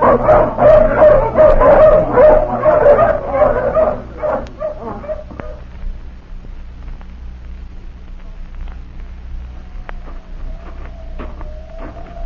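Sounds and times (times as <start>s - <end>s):
hounds yelping and whimpering: 0.0s - 5.6s, 10.0s - 12.2s
several hounds barking and yipping let off leash: 0.0s - 5.7s, 9.7s - 12.2s.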